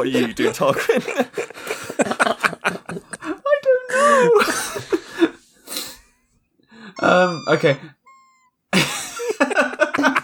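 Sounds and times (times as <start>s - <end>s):
speech: 0.0s - 1.7s, 7.1s - 7.9s
laughter: 0.0s - 6.1s, 7.0s - 7.9s, 8.8s - 10.2s
breathy wheezy exhale of a slowed-down squeaky toy: 5.0s - 8.0s
slowed-down squeaky toy making a snoring sound: 7.0s - 8.9s.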